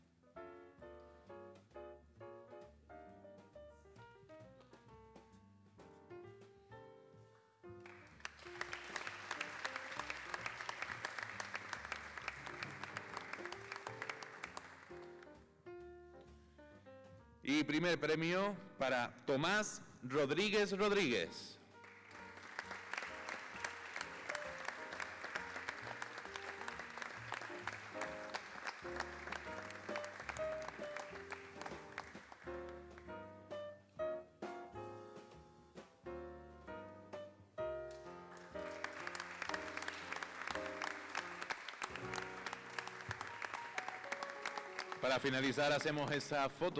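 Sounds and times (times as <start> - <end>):
audience applause: 7.8 - 15.3, 21.8 - 32.8, 38.2 - 46.2
speech: 17.5 - 21.5, 45.2 - 46.7.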